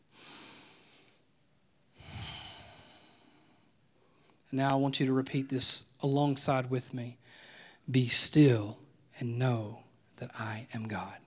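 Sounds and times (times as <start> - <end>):
deep breaths during a guided relaxation: 0.1 - 1.3, 1.9 - 4.4, 7.2 - 7.9
speech: 4.5 - 11.2.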